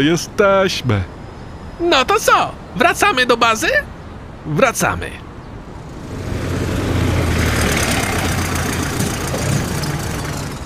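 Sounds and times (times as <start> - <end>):
speech: 0.0 - 1.2, 1.8 - 5.2
tractor and truck engines idling after snow-clearing work: 5.7 - 10.6.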